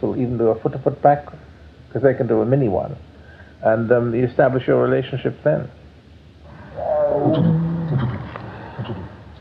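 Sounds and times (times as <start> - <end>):
speech: 0.0 - 5.8, 6.8 - 8.0
human voice imitating a tiger's friendly chuffing greeting: 6.6 - 9.2.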